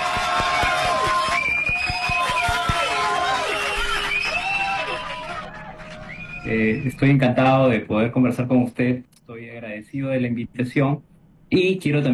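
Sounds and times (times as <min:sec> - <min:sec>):
audience applause welcoming a guest neurologist: 0:00.0 - 0:06.7
audience cheers and whistles: 0:00.0 - 0:07.2
speech: 0:06.5 - 0:12.1.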